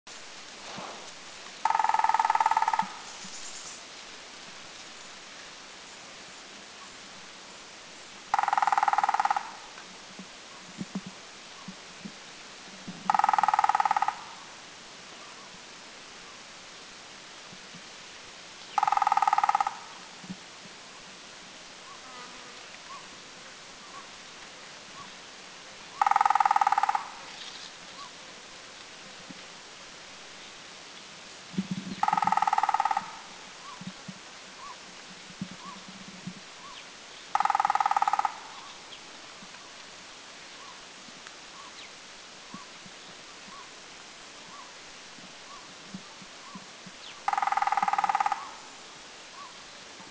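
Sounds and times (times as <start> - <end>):
Crimson-breasted Woodpecker drumming in Doi Lang: 1.6 - 3.8, 8.3 - 9.9, 13.0 - 14.6, 18.7 - 20.4, 25.9 - 27.4, 31.5 - 34.8, 36.6 - 39.0, 46.5 - 48.7.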